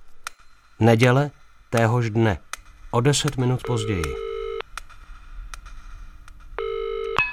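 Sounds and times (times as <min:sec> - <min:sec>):
speech: 0:00.8 - 0:04.3
faint clicks: 0:01.7 - 0:07.2
telephone ringing: 0:03.6 - 0:04.6, 0:06.6 - 0:07.3.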